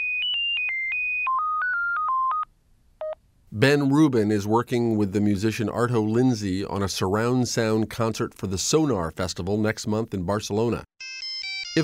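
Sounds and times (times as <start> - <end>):
melodic electronic telephone ringtone: 0.0 - 3.2, 11.0 - 11.8
speech: 3.5 - 10.9.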